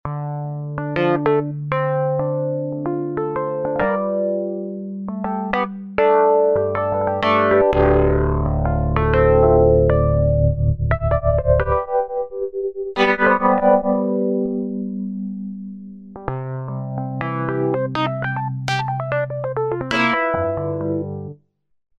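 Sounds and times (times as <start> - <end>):
electric piano synth patch: 0.1 - 21.4.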